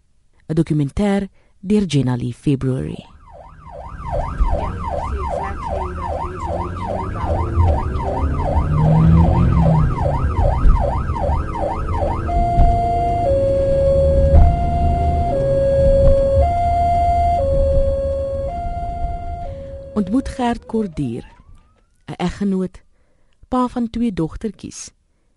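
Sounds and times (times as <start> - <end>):
speech: 0.5 - 3.1, 20.0 - 21.4, 22.1 - 22.8, 23.5 - 25.0
traffic rumbling: 2.6 - 22.2
emergency vehicle siren wailing: 3.1 - 22.1.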